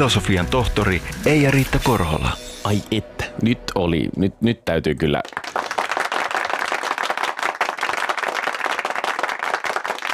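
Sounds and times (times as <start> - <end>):
speech: 0.0 - 5.6
group of people clapping: 5.2 - 10.1.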